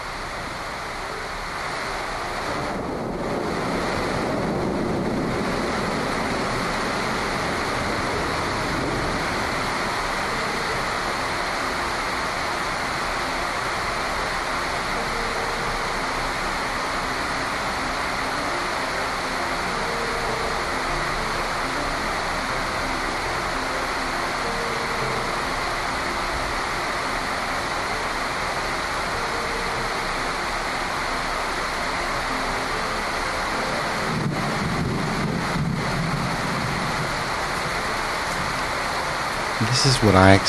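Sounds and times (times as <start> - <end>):
heavy rainfall from a summer storm: 0.0 - 40.4
speech: 39.8 - 40.4.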